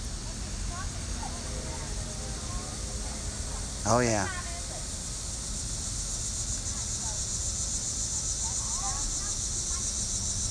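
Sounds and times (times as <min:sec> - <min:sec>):
faint murmurs of voices: 0:00.0 - 0:05.0
chorus of crickets chirping: 0:00.0 - 0:10.4
speech: 0:03.8 - 0:04.4.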